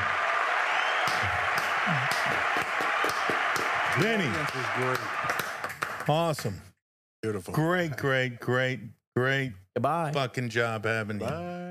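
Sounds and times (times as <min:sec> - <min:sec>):
steady dense applause: 0:00.0 - 0:06.7
speech: 0:02.3 - 0:03.4, 0:04.0 - 0:05.5, 0:06.1 - 0:11.6.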